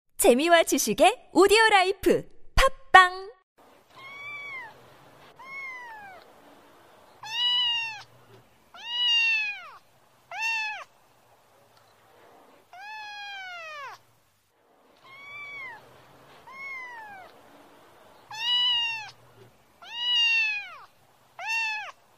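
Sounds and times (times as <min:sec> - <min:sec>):
speech: 0:00.2 - 0:03.3
cat meowing: 0:03.8 - 0:06.3, 0:07.2 - 0:08.1, 0:08.7 - 0:10.9, 0:12.7 - 0:14.0, 0:15.0 - 0:17.4, 0:18.3 - 0:19.2, 0:19.8 - 0:22.0.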